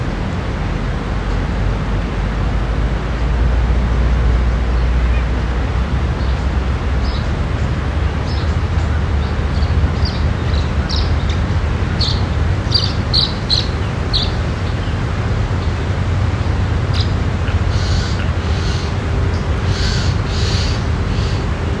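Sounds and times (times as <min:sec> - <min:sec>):
birds chirping beside a pasture: 0:00.0 - 0:21.7
heavy steady low rumble: 0:00.0 - 0:21.7.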